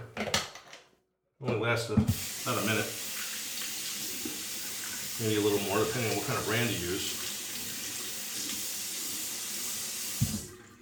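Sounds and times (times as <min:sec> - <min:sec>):
speech: 0:01.4 - 0:03.0, 0:05.2 - 0:07.2
water running from a tap while washing hands: 0:02.1 - 0:10.7.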